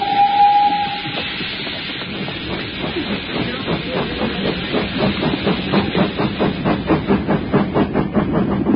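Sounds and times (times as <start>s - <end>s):
steam locomotive whistle: 0.0s - 1.3s
steam locomotive chuffing at full speed: 0.0s - 8.7s.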